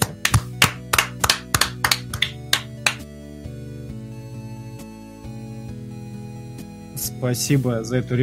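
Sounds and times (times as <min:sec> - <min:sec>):
hands clapping: 0:00.0 - 0:03.1
speech: 0:07.2 - 0:08.2.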